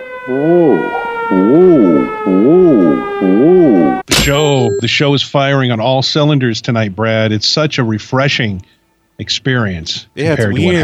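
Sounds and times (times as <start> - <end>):
civil defense siren wailing up and down: 0.0 - 4.1
speech: 0.2 - 10.8.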